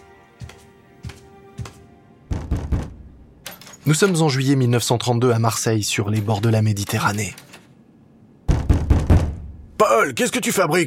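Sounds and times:
knocking on a wooden door: 2.3 - 3.1, 8.5 - 9.6
speech: 3.9 - 7.5, 10.0 - 10.8.

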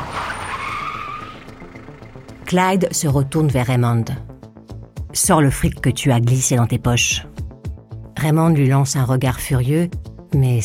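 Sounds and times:
car tires skidding to a sudden stop on the roadside: 0.0 - 2.4
speech: 2.5 - 4.3, 5.2 - 7.4, 8.2 - 10.6.

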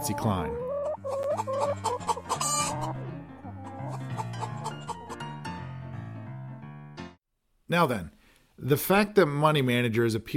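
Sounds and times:
speech: 0.0 - 0.6, 7.7 - 10.3
hens clucking: 0.0 - 5.2.

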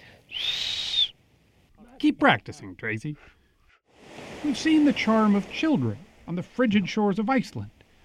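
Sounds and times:
whistled language whistling: 0.3 - 1.2
speech: 2.2 - 3.4, 4.4 - 7.8.

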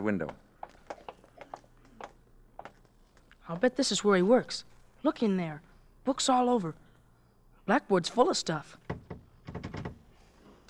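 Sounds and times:
speech: 0.0 - 0.5, 3.5 - 6.8, 7.7 - 8.9
door handle rattled against a locked latch: 8.8 - 10.1.

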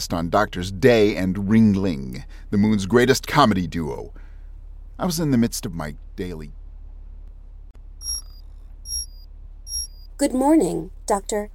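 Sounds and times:
speech: 0.0 - 4.2, 5.0 - 6.6, 10.2 - 11.5
faint low hum: 0.0 - 11.5
alarm clock high-pitched electronic chirps: 8.0 - 10.2.

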